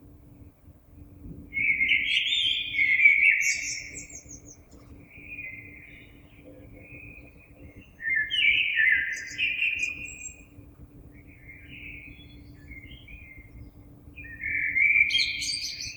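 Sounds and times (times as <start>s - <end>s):
Common blackbird song: 1.5s - 15.9s.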